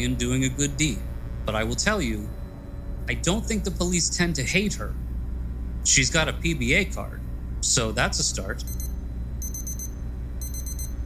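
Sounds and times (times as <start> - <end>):
speech: 0.0 - 2.4, 3.1 - 5.0, 5.8 - 8.8
low steady hum: 0.0 - 11.0
alarm with rapid high-pitched electronic beeps: 8.6 - 11.0.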